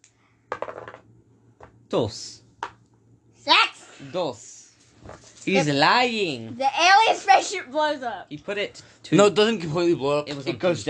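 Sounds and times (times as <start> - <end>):
dice clattering across a hard tabletop: 0.5 - 1.7
speech: 1.9 - 2.4, 4.0 - 10.8.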